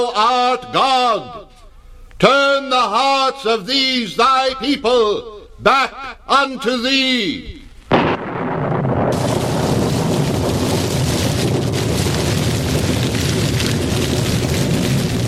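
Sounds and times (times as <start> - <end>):
speech: 0.0 - 1.5, 2.2 - 7.6
large fire whooshing and roaring on an altar: 8.4 - 15.2.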